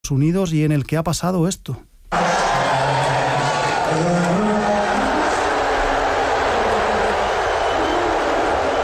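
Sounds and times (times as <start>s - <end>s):
speech: 0.1s - 2.2s
large stadium crowd booing: 2.1s - 8.8s.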